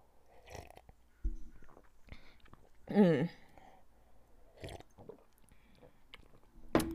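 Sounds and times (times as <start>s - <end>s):
person sipping juice: 0.2s - 6.5s
loud slurping gulp: 0.3s - 1.0s, 4.5s - 6.4s
quiet swallows: 0.3s - 3.7s, 4.4s - 6.5s.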